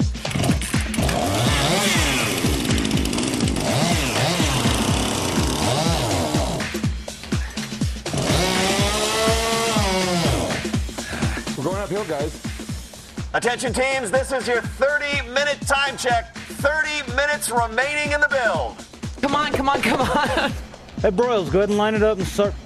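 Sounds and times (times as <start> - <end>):
chainsaw engine powering a team-built vehicle's drive system under load: 0.2 - 6.9, 7.9 - 11.6
speech: 12.1 - 12.5, 13.3 - 22.6
laughter: 19.3 - 20.7.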